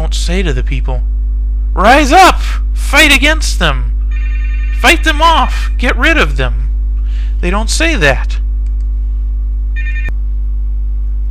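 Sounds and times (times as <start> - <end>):
steady low electrical hum: 0.0 - 11.2
speech: 0.3 - 1.2, 1.8 - 3.9, 4.8 - 6.6, 7.4 - 8.4
electronic telephone ringing for an incoming call: 4.1 - 5.2, 9.8 - 10.1
sharp click: 8.6 - 8.9.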